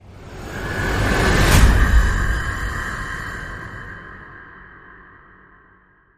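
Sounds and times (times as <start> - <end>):
dragon fire whoosh hit: 0.8 - 3.1.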